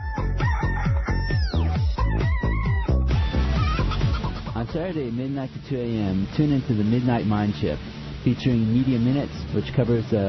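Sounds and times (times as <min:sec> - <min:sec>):
roosters crowing: 0:00.0 - 0:04.7
speech: 0:04.7 - 0:10.2.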